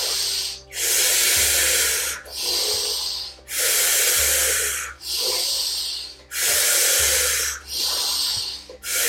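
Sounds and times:
forceful rhythmic breathing in and out: 0.0s - 9.0s.

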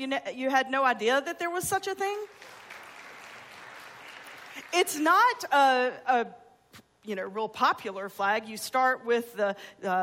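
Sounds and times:
speech: 0.0s - 2.6s, 4.7s - 10.0s
crowd applauding: 2.3s - 5.0s.

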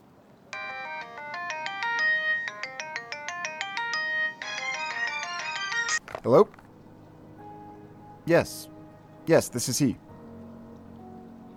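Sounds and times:
cell phone ringing with a bright rapid electronic melody: 0.6s - 6.4s
speech: 6.0s - 6.6s, 8.3s - 8.7s, 9.3s - 10.0s.

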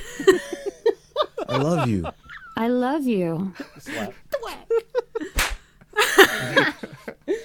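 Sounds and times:
laughter: 0.0s - 2.6s, 3.6s - 5.4s, 6.0s - 7.4s
speech: 0.2s - 0.7s, 1.6s - 4.2s
sharp loud face slap sound effect: 5.3s - 5.7s.

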